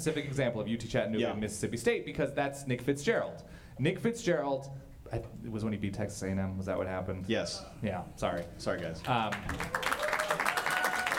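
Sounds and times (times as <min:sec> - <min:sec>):
speech: 0:00.0 - 0:09.8
small group clapping in a room: 0:08.3 - 0:11.1.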